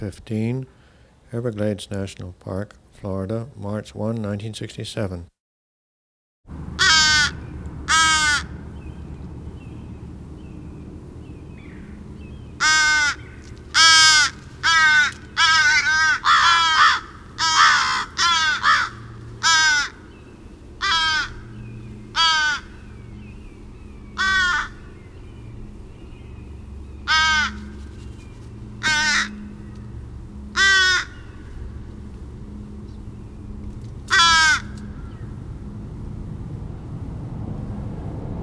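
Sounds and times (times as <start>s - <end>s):
speech: 0.0s - 5.3s
common crow Corvus brachyrhynchus cawing in Everglades National Park, Florida: 6.6s - 9.2s, 11.4s - 35.8s.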